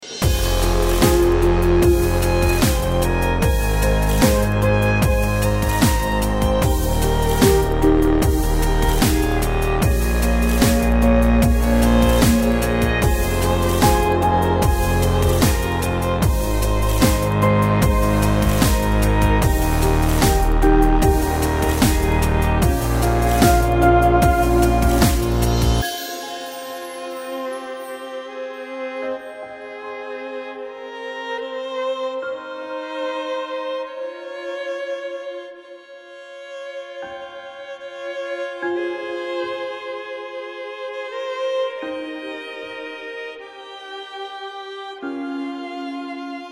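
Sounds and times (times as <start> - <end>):
chilled violin playing: 0.0 - 46.5
chilled guitar playing: 0.3 - 27.1.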